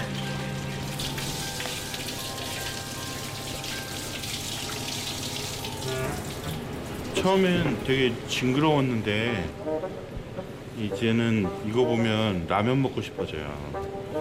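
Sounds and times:
tap water splashing over bait worms being rinsed: 0.8s - 7.8s
speech: 7.2s - 10.1s, 10.8s - 14.1s.

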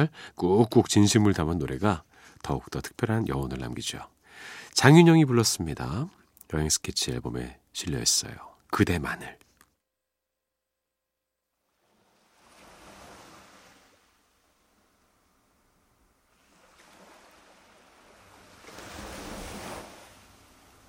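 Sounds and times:
speech: 0.0s - 9.4s
ocean waves crashing on shore: 11.7s - 20.8s.

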